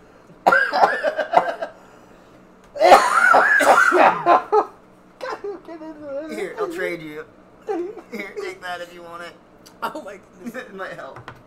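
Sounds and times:
person coughing: 0:00.4 - 0:01.8, 0:02.8 - 0:04.4.

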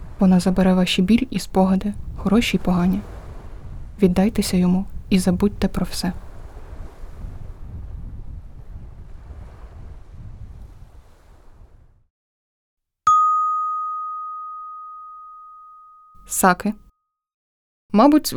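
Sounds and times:
sea waves washing ashore: 0:00.0 - 0:11.9
speech: 0:00.2 - 0:03.1, 0:04.0 - 0:06.2, 0:16.4 - 0:16.8, 0:17.9 - 0:18.3
bright chime ringing: 0:13.1 - 0:16.4.

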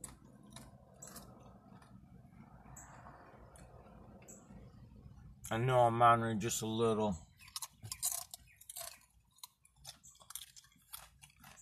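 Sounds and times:
person crunching and munching food: 0:00.0 - 0:02.0, 0:07.4 - 0:11.6
speech: 0:05.5 - 0:07.3.

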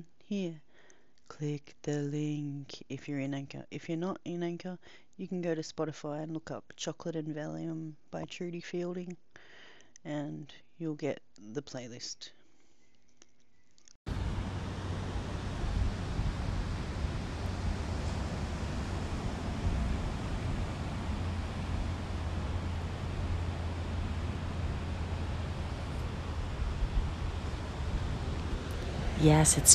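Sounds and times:
speech: 0:00.3 - 0:00.6, 0:01.3 - 0:09.2, 0:10.0 - 0:12.4, 0:29.2 - 0:29.7
ocean surf washing ashore with a deep rumbling undertone: 0:14.1 - 0:29.7.

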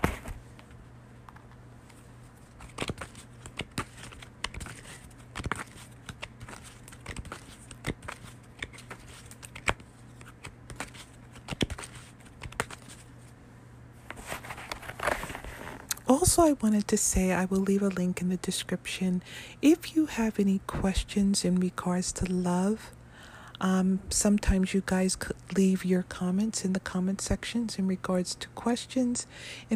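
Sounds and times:
oracle cards being shuffled: 0:00.0 - 0:13.4, 0:14.0 - 0:16.0
low hum: 0:00.0 - 0:29.7
speech: 0:16.2 - 0:23.0, 0:23.6 - 0:29.7.

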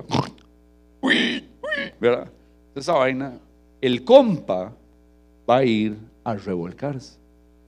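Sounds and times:
voice imitating a pig grunting: 0:00.0 - 0:00.4, 0:01.0 - 0:02.0
speech: 0:01.3 - 0:04.8, 0:05.5 - 0:07.2.

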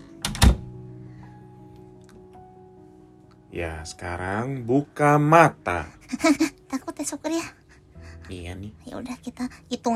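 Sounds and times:
door being shut with a click and a thud: 0:00.2 - 0:00.7
speech: 0:03.6 - 0:07.6, 0:08.3 - 0:09.9.

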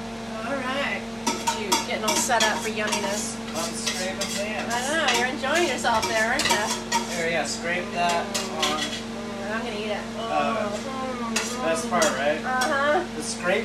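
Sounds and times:
voices murmuring: 0:00.4 - 0:13.6
metal utensil scraping the bottom of a pan: 0:01.2 - 0:09.1, 0:11.4 - 0:12.7
speech: 0:02.1 - 0:13.6.

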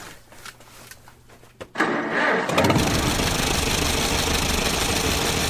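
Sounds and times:
old tractor engine cranking, starting and idling: 0:01.8 - 0:05.4.

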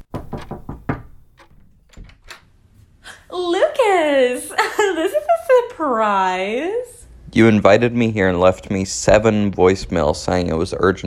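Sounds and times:
firm knocking on a wooden door: 0:00.0 - 0:01.4
speech: 0:03.4 - 0:11.0.

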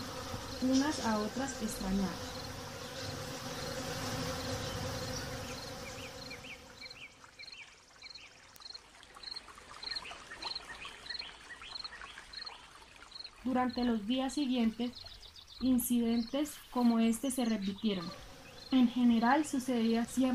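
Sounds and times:
wasps buzzing: 0:00.0 - 0:07.0, 0:14.6 - 0:20.3
speech: 0:00.6 - 0:02.3, 0:13.5 - 0:20.3.

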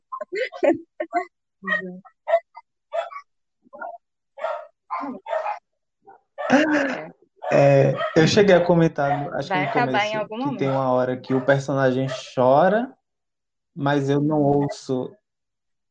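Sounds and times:
speech: 0:00.3 - 0:02.1, 0:06.6 - 0:13.0, 0:13.8 - 0:15.2
dog barking: 0:01.7 - 0:03.2, 0:03.8 - 0:05.6, 0:06.4 - 0:06.6, 0:07.4 - 0:08.4, 0:09.0 - 0:10.0, 0:10.6 - 0:12.4
laughter: 0:06.5 - 0:11.6.

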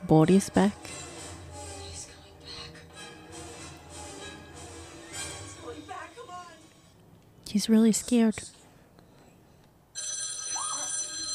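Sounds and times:
speech: 0:00.1 - 0:01.1, 0:07.5 - 0:08.6
telephone bell ringing loudly with a metallic jangle: 0:10.0 - 0:11.3.

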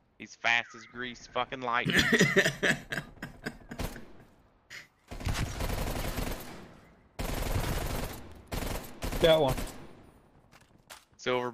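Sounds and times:
speech: 0:00.2 - 0:03.0, 0:09.2 - 0:09.7, 0:11.2 - 0:11.5
laughter: 0:01.9 - 0:04.3
video game gunfire: 0:03.7 - 0:04.3, 0:05.1 - 0:10.5.

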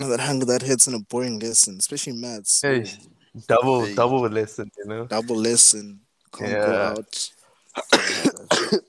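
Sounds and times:
speech: 0:00.0 - 0:08.8
harsh raspy coughs: 0:07.7 - 0:08.8.

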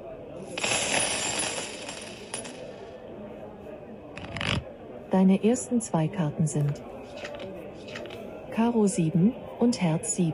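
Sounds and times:
gold coins clinking as they are set down as a wager at a tavern card game: 0:00.5 - 0:02.8
speech: 0:05.1 - 0:07.0, 0:08.6 - 0:10.3.

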